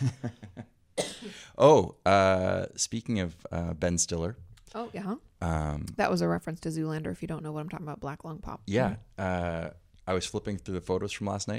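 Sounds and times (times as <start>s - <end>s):
speech: 0.0s - 0.4s, 1.6s - 11.5s
person coughing harshly: 1.0s - 1.5s.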